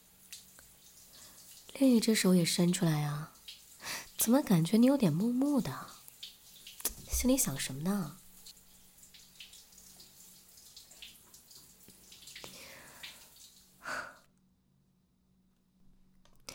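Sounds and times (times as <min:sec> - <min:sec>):
speech: 0:01.8 - 0:03.4, 0:04.2 - 0:06.0, 0:07.2 - 0:08.2
shower spray hissing: 0:06.8 - 0:08.5
shower water splash: 0:06.8 - 0:08.5.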